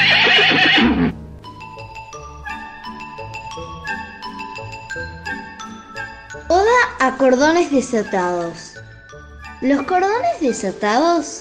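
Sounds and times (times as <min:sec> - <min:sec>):
loud horse whinny: 0:00.0 - 0:01.2
gentle melody of bright bell-like chiming notes: 0:01.5 - 0:10.4
speech: 0:07.0 - 0:08.7, 0:09.6 - 0:11.3.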